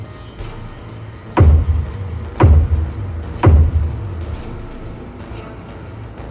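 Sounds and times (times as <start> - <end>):
slow heavy knocks on walls and floors: 1.4 - 4.8.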